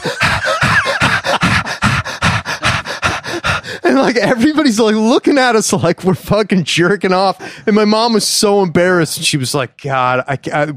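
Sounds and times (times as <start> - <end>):
person imitating an overheated dog panting in a silent movie theater: 0.0 - 4.4
laughter: 0.0 - 6.0
speech: 4.0 - 10.7.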